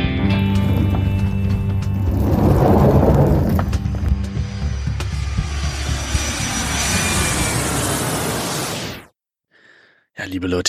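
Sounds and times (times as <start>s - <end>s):
airplane engine roar: 0.2s - 9.1s
speech: 10.3s - 10.6s.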